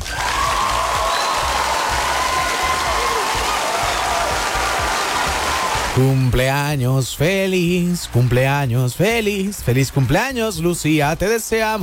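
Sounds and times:
faint cheers: 0.0s - 6.0s
sustained applause from a crowd: 0.0s - 6.3s
speech: 6.0s - 11.8s.

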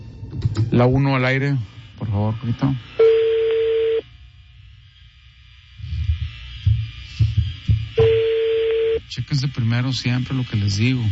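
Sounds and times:
speech: 0.6s - 2.9s, 9.2s - 11.1s
low thumping telephone dialing pulses: 3.0s - 4.0s, 6.1s - 9.0s
telephone line tone: 3.0s - 4.0s, 8.0s - 9.0s.

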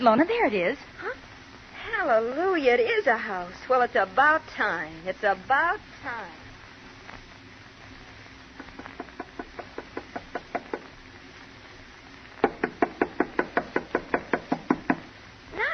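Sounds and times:
speech: 0.0s - 1.0s, 2.0s - 6.4s
knuckles knocking on the door of a house on a cold night: 8.7s - 10.9s, 12.4s - 15.1s.

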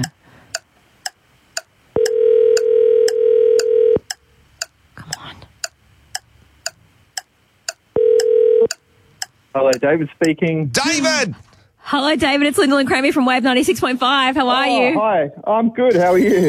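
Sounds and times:
person muttering: 0.0s - 0.2s
regular clicking tick: 0.5s - 4.7s, 5.6s - 10.4s
phone ringback tone: 2.0s - 4.0s, 8.0s - 8.7s
speech: 9.6s - 16.4s.

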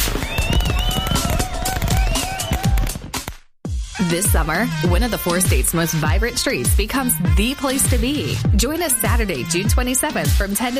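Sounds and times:
high whistling rockets: 0.0s - 3.0s
fireworks popping and booming: 0.0s - 3.5s
speech: 4.0s - 10.7s.

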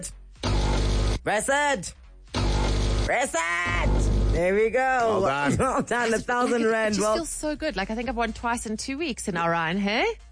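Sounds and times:
speech: 0.0s - 0.2s, 1.2s - 2.0s, 3.1s - 10.3s
coffee machine grinding: 0.4s - 1.2s, 2.4s - 3.1s, 3.8s - 4.5s.

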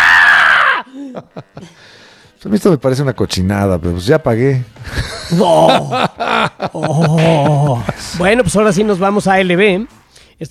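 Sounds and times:
loud shrill scream: 0.0s - 0.9s
laughter: 0.9s - 1.8s, 4.8s - 9.1s
speech: 1.2s - 10.4s.

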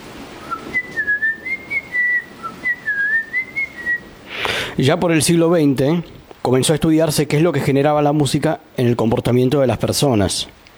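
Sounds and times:
person whistling a simple melody: 0.4s - 4.1s
speech: 4.8s - 10.6s.

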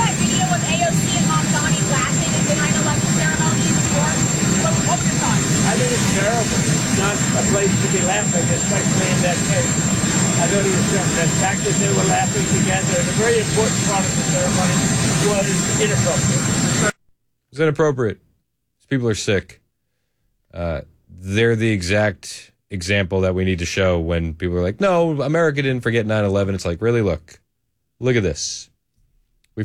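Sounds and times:
voices of the press asking questions: 0.0s - 16.9s
aircraft engine roaring on an airport tarmac in Ireland: 0.0s - 17.0s
high aircraft jet whine: 0.0s - 17.0s
speech: 15.8s - 16.2s, 17.6s - 18.2s, 18.9s - 19.6s, 20.5s - 27.4s, 28.0s - 28.7s.

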